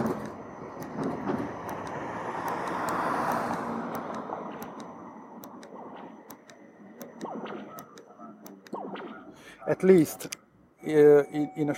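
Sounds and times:
rumble of passing traffic: 0.0 - 7.2
crossing signal button presses: 0.0 - 9.0
accessible pedestrian crossing signal beeping: 0.0 - 11.7
speech: 9.7 - 11.7.

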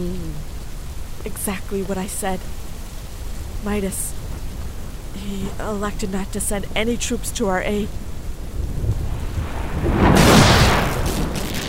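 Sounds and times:
steady rain hissing: 0.0 - 11.6
speech: 1.2 - 2.6, 3.6 - 4.2, 5.2 - 8.0
thunder rumbling overhead: 3.6 - 11.6.

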